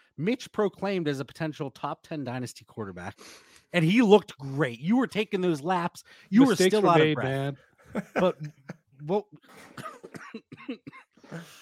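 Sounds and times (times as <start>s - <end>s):
speech: 0.2s - 11.5s
laughter: 7.8s - 8.8s
harsh hacking coughs: 9.5s - 11.5s.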